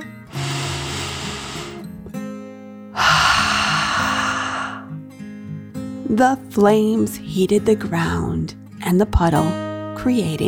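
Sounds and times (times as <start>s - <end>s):
voice imitating a dragon's deep breath in and out: 3.0s - 4.9s
speech: 6.1s - 10.4s.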